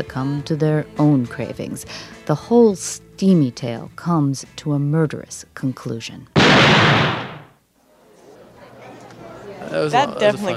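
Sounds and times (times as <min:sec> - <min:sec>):
speech: 0:00.0 - 0:07.2, 0:09.7 - 0:10.5
gunshot in a stage drama: 0:06.4 - 0:07.6.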